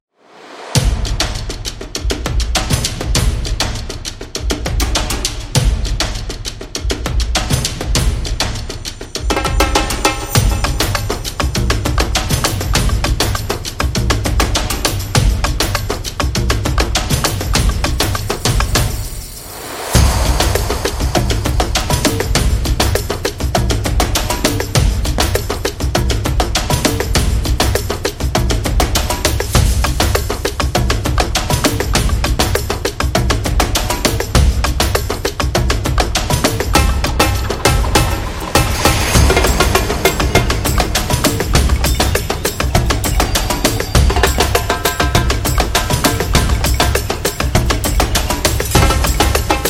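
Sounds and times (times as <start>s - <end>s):
tribal drums: 0.4s - 49.6s.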